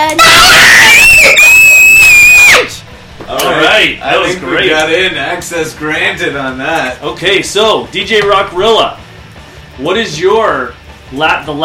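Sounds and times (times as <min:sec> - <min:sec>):
audience yelling a catchphrase in unison: 0:00.0 - 0:02.7
speech: 0:04.0 - 0:09.0, 0:09.8 - 0:11.6.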